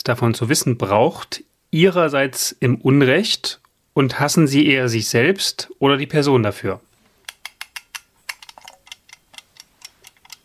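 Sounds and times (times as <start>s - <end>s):
speech: 0.0s - 6.9s
mechanical egg timer ticking: 7.3s - 10.4s.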